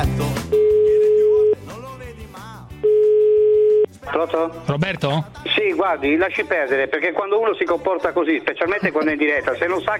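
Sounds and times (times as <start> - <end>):
telephone busy tone after hanging up: 0.6 - 1.6, 2.8 - 3.9
speech: 4.2 - 9.9.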